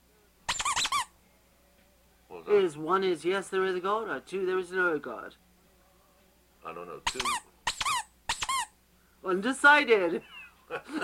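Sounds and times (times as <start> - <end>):
squeaky toy squeaking: 0.5 - 1.1, 7.0 - 8.8
speech: 2.5 - 5.4, 6.6 - 7.5, 9.2 - 11.0.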